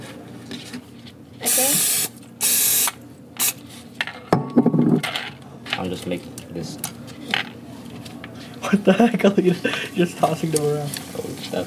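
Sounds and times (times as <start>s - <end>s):
low room hum: 0.0s - 11.6s
cooking spray hissing onto a waffle iron: 1.4s - 3.6s
speech: 1.6s - 2.1s, 6.0s - 7.0s, 8.7s - 11.6s.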